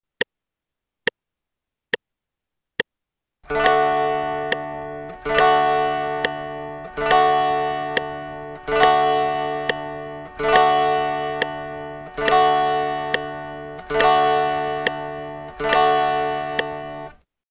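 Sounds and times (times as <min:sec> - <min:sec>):
guitar strumming a quarter note pattern in D: 0:03.5 - 0:17.2.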